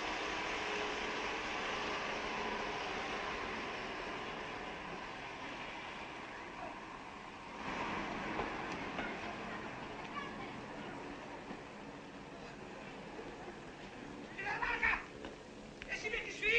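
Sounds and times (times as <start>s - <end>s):
train pulling away from a station: 0.0s - 16.4s.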